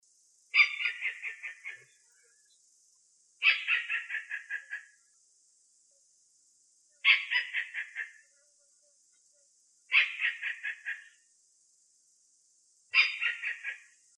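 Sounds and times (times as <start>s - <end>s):
pekaka emas kingfisher calling: 0.5s - 1.9s, 3.4s - 5.0s, 7.0s - 8.2s, 9.9s - 11.2s, 12.9s - 13.9s.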